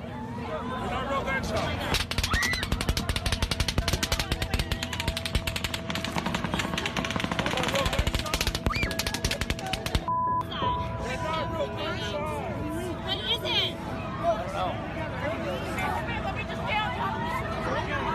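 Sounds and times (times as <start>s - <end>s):
crowd murmuring and shouting: 0.0s - 18.1s
rapid automatic gunfire echoing across an open space: 1.9s - 10.1s.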